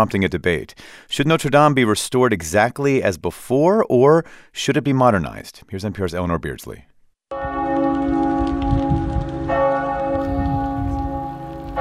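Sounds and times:
speech: 0.0s - 6.9s
large church bells tolling across France: 7.3s - 11.8s.

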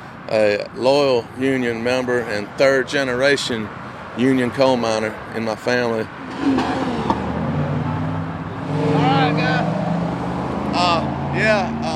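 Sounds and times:
road traffic vehicles passing by: 0.0s - 11.9s
speech: 0.3s - 6.8s, 11.4s - 11.9s.

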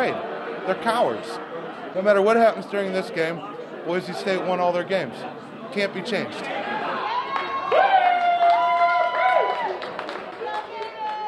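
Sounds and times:
speech: 0.0s - 6.7s
crowd cheering and yelling in a restaurant and brewery: 6.4s - 11.2s.

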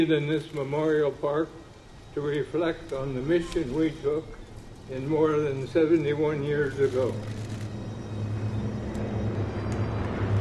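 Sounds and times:
speech: 0.0s - 7.4s
B-25 bomber piston engines droning during a flyover at a memorial park: 0.0s - 10.3s.

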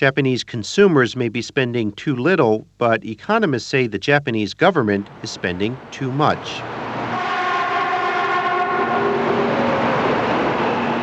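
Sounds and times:
speech: 0.0s - 6.8s
bullet train roaring past with rush of wind and rail noise: 5.0s - 11.0s.

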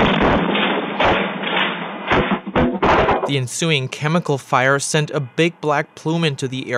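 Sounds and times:
heavy thuds of a chemical plant explosion: 0.0s - 3.4s
chemical plant explosion with roar of rushing noise: 0.0s - 6.0s
speech: 3.3s - 6.7s.

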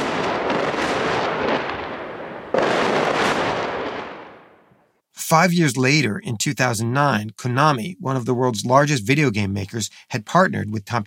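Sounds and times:
RPG and mortar fire and airstrikes on buildings: 0.0s - 4.6s
gunfire in a firefight in Fallujah: 0.0s - 4.6s
speech: 5.3s - 11.0s.

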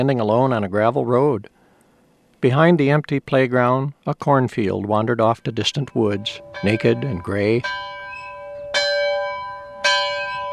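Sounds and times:
speech: 0.0s - 1.6s, 2.4s - 7.9s
old school bell ringing: 5.3s - 10.5s.

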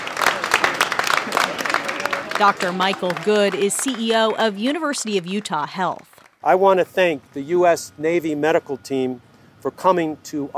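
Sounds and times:
crowd applauding a Navy medical surge team at a hospital in Salt Lake City, Utah: 0.0s - 6.5s
speech: 2.4s - 10.5s.

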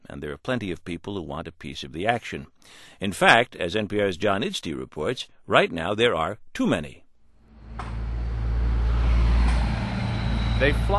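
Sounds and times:
speech: 0.1s - 7.0s, 10.6s - 10.9s
heavy diesel dump truck engines rumbling on a green space next to City Park: 7.6s - 10.9s.

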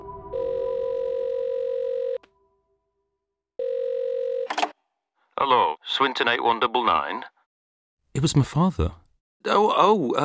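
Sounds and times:
telephone ringback tone after dialing: 0.3s - 2.2s, 3.6s - 4.5s
speech: 5.4s - 7.3s, 8.2s - 10.2s.

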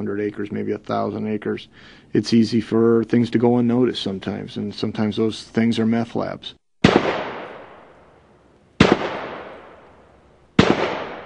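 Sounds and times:
speech: 0.0s - 7.1s
gunshots hitting gas cylinders of anhydrous ammonia on a police firing range: 6.8s - 7.9s, 8.8s - 9.9s, 10.6s - 11.2s.

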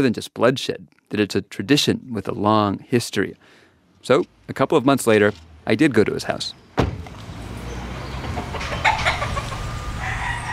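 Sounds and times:
speech: 0.0s - 6.9s
soft bird sounds: 6.4s - 9.6s
fighting roosters crowing and clucking at a house: 7.4s - 10.5s.

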